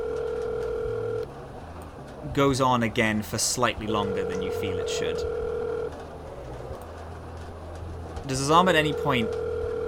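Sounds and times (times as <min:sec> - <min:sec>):
electronic phone ringing tone after a call is placed: 0:00.0 - 0:01.3, 0:03.9 - 0:06.0, 0:08.9 - 0:09.8
speech: 0:02.4 - 0:05.4, 0:08.3 - 0:09.5.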